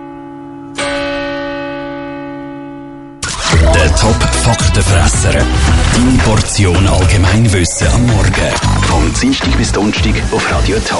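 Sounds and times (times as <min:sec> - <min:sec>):
large church bell strike and ringing tone: 0:00.0 - 0:05.5
speech: 0:03.9 - 0:10.9.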